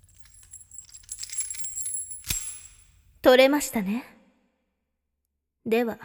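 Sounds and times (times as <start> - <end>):
keys jingling as they are handed over: 0.0 - 3.2
speech: 3.2 - 4.2, 5.7 - 6.0.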